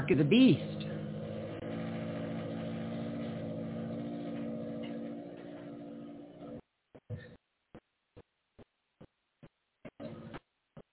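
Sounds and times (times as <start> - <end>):
speech: 0.0 - 0.8
neighbor's car engine rumbling: 0.0 - 6.6.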